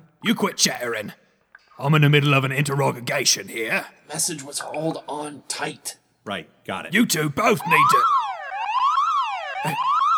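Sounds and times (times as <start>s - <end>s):
speech: 0.2s - 1.2s, 1.8s - 8.2s, 9.6s - 9.9s
door alarm wailing: 7.0s - 10.1s.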